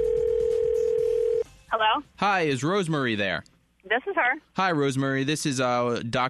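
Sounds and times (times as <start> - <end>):
telephone dial tone as a call is placed: 0.0 - 1.4
speech: 1.7 - 6.2.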